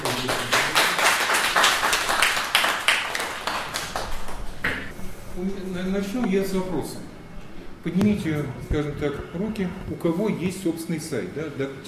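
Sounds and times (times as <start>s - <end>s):
audience applauding: 0.0s - 4.6s
speech: 5.4s - 7.0s, 7.8s - 11.8s.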